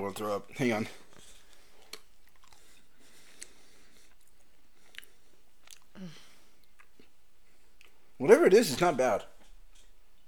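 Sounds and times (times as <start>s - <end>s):
speech: 0.0s - 1.0s, 6.0s - 6.2s, 8.2s - 9.3s
chewing on a jelly bean with soft crunches and wet clicks: 1.1s - 6.0s, 6.6s - 8.0s.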